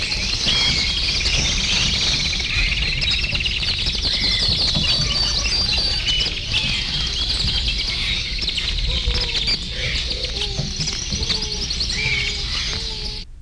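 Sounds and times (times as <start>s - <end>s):
birds singing in a dense chorus of high chirps and twitters: 0.0s - 13.3s
constant low rumble: 0.0s - 13.4s.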